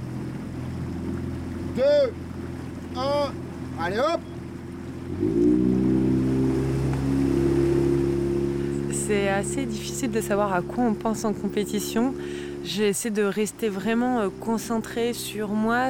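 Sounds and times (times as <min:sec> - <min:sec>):
motorboat engine droning on water: 0:00.0 - 0:15.8
speech: 0:01.8 - 0:02.2, 0:03.0 - 0:04.3, 0:09.1 - 0:15.8.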